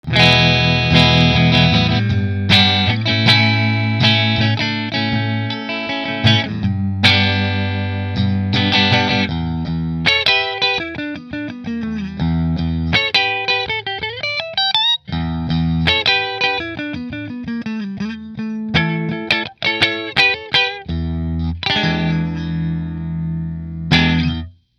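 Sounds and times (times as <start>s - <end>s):
koa guitars: 0.0s - 24.7s.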